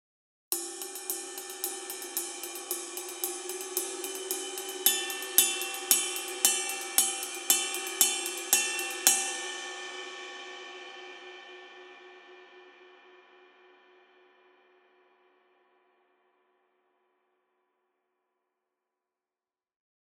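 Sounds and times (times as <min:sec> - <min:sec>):
custom ride cymbal: 0:00.5 - 0:11.0.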